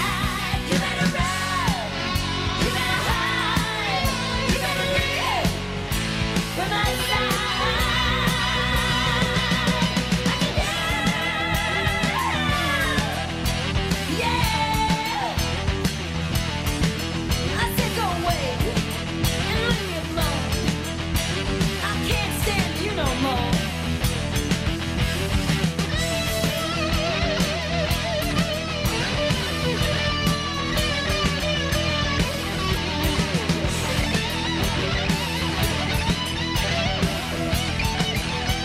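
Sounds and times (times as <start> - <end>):
woman singing with a high-pitched scream: 0.0 - 5.6, 6.6 - 13.3, 14.1 - 15.4, 21.8 - 23.6
rock song cover with full band played from a recording: 0.0 - 38.6.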